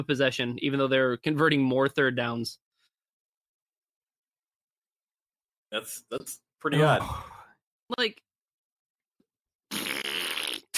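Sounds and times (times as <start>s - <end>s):
speech: 0.0s - 2.6s, 5.7s - 7.3s, 7.9s - 8.2s
wet sputtering fart: 9.7s - 10.7s.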